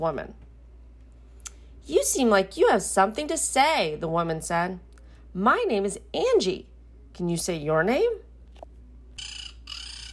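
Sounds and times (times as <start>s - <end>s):
speech: 0.0s - 0.5s, 1.9s - 8.3s
bird squawking on a light fixture: 9.2s - 10.1s.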